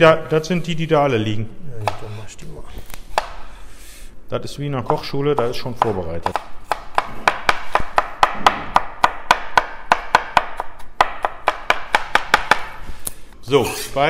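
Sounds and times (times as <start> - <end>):
speech: 0.0 - 1.6, 4.3 - 6.6, 13.5 - 14.0
cleaver chopping fresh coriander sprigs: 4.8 - 13.1.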